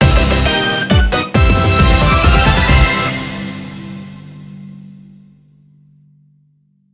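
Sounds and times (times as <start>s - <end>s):
quest clear jingle: 0.0s - 4.6s.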